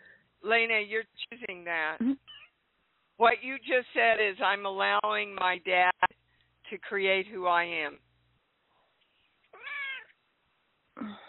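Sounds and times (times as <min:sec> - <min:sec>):
speech: 0:00.5 - 0:02.4, 0:03.2 - 0:08.1
cat meowing: 0:09.5 - 0:10.2.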